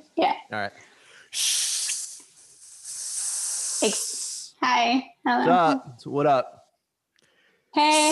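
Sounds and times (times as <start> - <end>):
speech: 0.2 - 1.6, 3.8 - 6.6, 7.8 - 8.0
voice imitating a barista's milk steamer steaming milk: 1.3 - 4.6, 7.8 - 8.0.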